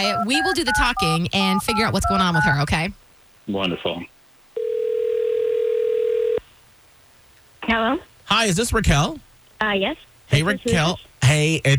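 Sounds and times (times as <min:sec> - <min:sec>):
speech: 0:00.0 - 0:04.1, 0:07.7 - 0:11.7
telephone dial tone: 0:04.6 - 0:06.4.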